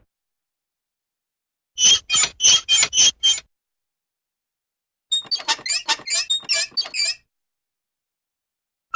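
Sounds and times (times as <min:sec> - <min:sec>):
metallic creaks: 0:01.8 - 0:03.4, 0:05.1 - 0:07.2.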